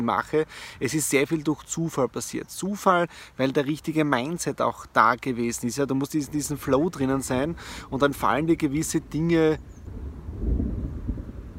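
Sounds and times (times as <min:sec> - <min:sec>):
speech: 0:00.0 - 0:10.0
thunder rumbling: 0:09.8 - 0:11.5.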